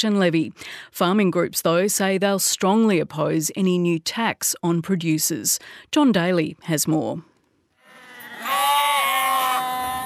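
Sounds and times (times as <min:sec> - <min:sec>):
speech: 0:00.0 - 0:07.3
sheep bleating: 0:07.9 - 0:10.0.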